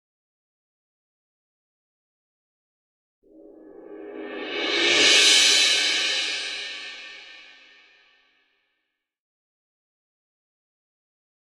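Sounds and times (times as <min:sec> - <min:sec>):
cymbal roll: 0:03.3 - 0:08.0.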